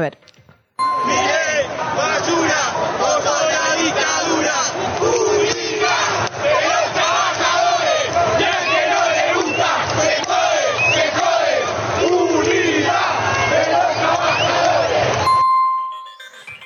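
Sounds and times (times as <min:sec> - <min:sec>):
metallic dings: 0:00.8 - 0:01.7, 0:15.3 - 0:16.6
large street protest crowd chanting: 0:00.8 - 0:15.3.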